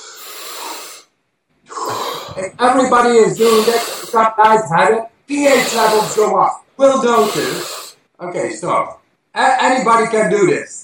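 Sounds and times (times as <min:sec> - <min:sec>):
deep full breath drawn in during a breathing exercise: 0:00.0 - 0:01.1, 0:01.7 - 0:02.5, 0:03.4 - 0:04.2, 0:07.2 - 0:08.0
speech: 0:02.4 - 0:10.8.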